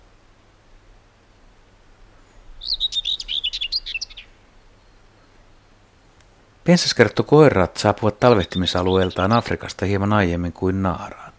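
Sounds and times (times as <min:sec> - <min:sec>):
faint low hum: 0:00.0 - 0:11.3
common whitethroat singing a brisk scratchy warble: 0:02.2 - 0:05.4, 0:06.7 - 0:11.1
speech: 0:06.7 - 0:11.3.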